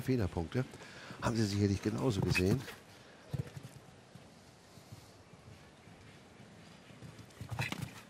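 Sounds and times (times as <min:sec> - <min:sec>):
speech: 0:00.0 - 0:03.5
steady outdoor hum: 0:00.0 - 0:08.0
horse hooves thudding on the ground during a show jumping round: 0:01.8 - 0:08.0.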